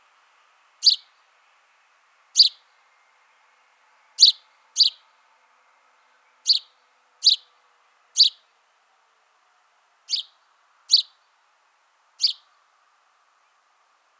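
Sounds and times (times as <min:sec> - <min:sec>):
house sparrow Passer domesticus calling with clipped chirps: 0:00.8 - 0:01.1, 0:02.4 - 0:02.6, 0:04.2 - 0:05.0, 0:06.4 - 0:07.5, 0:08.2 - 0:08.4, 0:10.1 - 0:11.2, 0:12.2 - 0:12.5.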